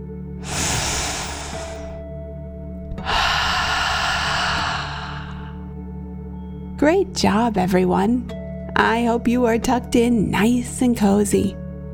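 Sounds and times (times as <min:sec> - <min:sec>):
deep slow breath in and out during a guided relaxation: 0:00.4 - 0:02.0, 0:02.9 - 0:05.8
speech: 0:06.8 - 0:11.6.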